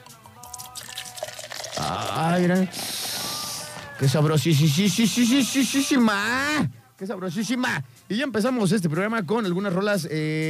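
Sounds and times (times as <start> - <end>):
beer pouring from a large bottle: 0.0 - 3.8
speech: 1.9 - 3.0, 4.0 - 10.4.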